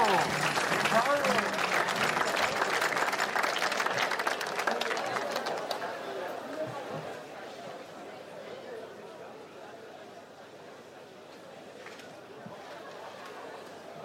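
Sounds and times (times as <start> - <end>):
audience applauding performers on stage: 0.0 - 6.6
crowd chatter: 0.0 - 14.0.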